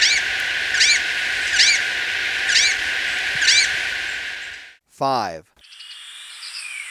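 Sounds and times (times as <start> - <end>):
grass-green tanager calling nasal harmonic notes in Ecuador: 0.0 - 5.4
speech: 5.0 - 5.5.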